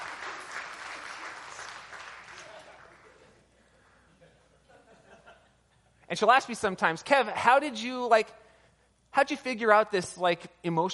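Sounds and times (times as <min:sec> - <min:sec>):
crowd applauding: 0:00.0 - 0:03.4
laughter: 0:02.3 - 0:05.9
speech: 0:06.1 - 0:08.4, 0:09.2 - 0:10.9.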